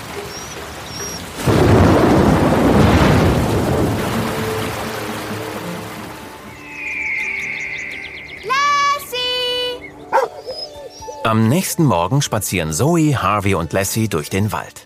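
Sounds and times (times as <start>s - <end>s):
storm noise: 1.2s - 5.2s
loud thunderclap rolling into a deep rumble: 1.3s - 5.4s
thin high tone: 6.5s - 9.8s
speech: 11.3s - 14.8s.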